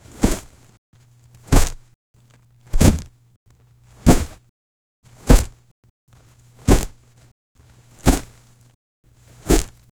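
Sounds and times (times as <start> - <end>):
sharp percussive thwack: 1.5 - 1.8, 2.8 - 3.1, 4.1 - 4.4, 5.3 - 5.5, 9.5 - 9.7.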